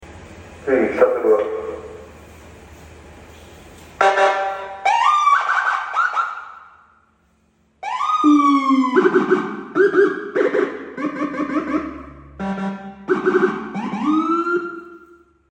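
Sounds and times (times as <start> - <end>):
Whelen strobe siren: 4.0 - 6.9, 7.8 - 15.4.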